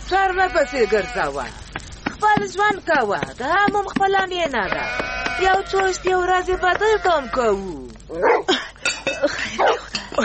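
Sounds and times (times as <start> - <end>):
speech: 0.1 - 1.6, 2.2 - 8.6
dog barking by a nomad tent: 8.2 - 8.5, 9.6 - 9.9.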